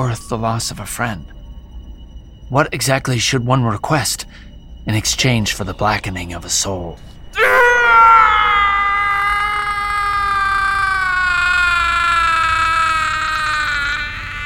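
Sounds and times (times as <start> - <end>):
speech: 0.0 - 1.4, 2.5 - 7.6
man's agonized scream: 7.3 - 14.4.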